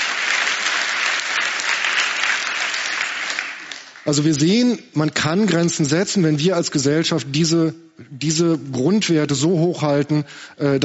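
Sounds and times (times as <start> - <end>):
audience applause: 0.0 - 4.2
speech: 4.0 - 10.8.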